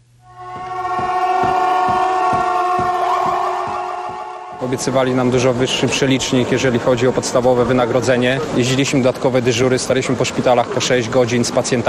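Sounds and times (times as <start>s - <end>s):
ambulance sirens on a city street: 0.3s - 5.0s
speech: 4.7s - 11.8s.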